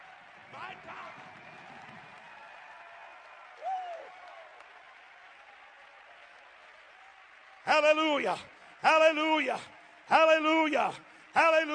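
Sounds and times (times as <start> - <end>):
church audience clapping and cheering: 0.0 - 11.7
single rising whoop: 3.6 - 4.1
speech: 7.8 - 11.7.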